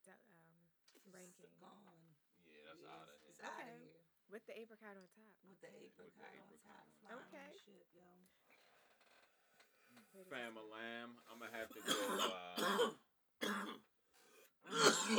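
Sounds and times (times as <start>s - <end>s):
speech: 1.0s - 8.5s, 9.9s - 13.9s, 14.6s - 15.1s
murmured vocal sounds: 10.9s - 12.9s
person clearing throat: 11.5s - 13.8s, 14.7s - 15.1s
person coughing: 11.5s - 13.8s, 14.7s - 15.1s.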